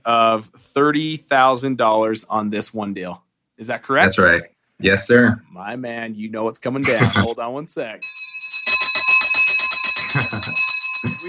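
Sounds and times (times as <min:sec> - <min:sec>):
speech: 0:00.0 - 0:08.2, 0:09.4 - 0:11.2
laughter: 0:04.0 - 0:05.2, 0:06.8 - 0:07.4, 0:10.0 - 0:11.2
victory bell clanging rapidly: 0:08.0 - 0:11.2.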